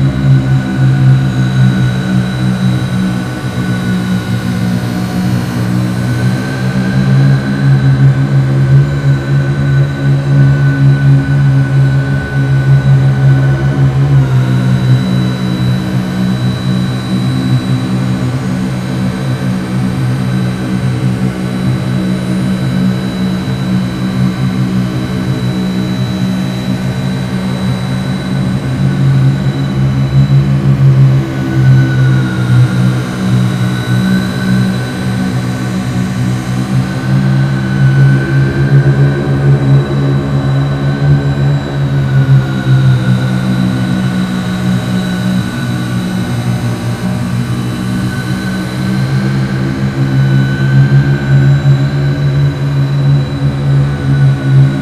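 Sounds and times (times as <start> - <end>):
giant sci-fi fan turbine: 0.0 - 54.8.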